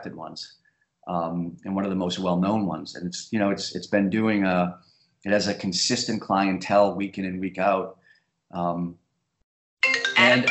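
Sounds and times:
speech: 0.0s - 9.0s, 9.8s - 10.4s
mobile phone ringtone: 9.8s - 10.4s.

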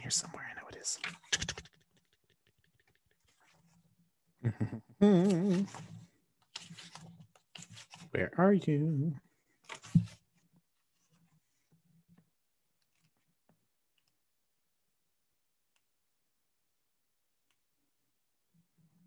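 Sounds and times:
speech: 0.1s - 1.7s, 4.4s - 5.9s, 8.2s - 9.2s
book page being flipped: 5.2s - 8.1s, 9.5s - 11.5s, 12.8s - 13.4s.

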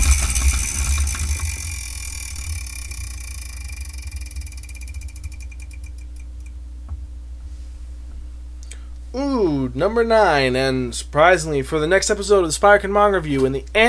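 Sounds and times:
prize wheel spinning: 0.0s - 6.5s
speech: 9.2s - 13.8s.

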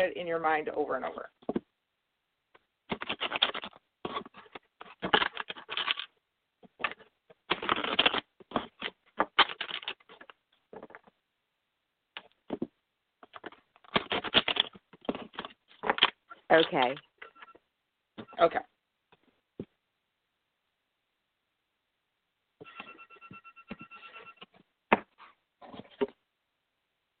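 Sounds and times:
speech: 0.0s - 1.5s, 16.5s - 17.1s, 18.4s - 18.7s
deck of cards being shuffled: 2.9s - 11.2s, 12.2s - 17.1s.

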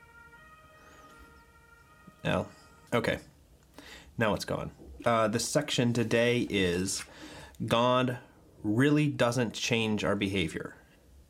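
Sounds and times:
ambulance siren wailing outside: 0.0s - 3.0s
speech: 2.2s - 3.3s, 4.2s - 10.8s.

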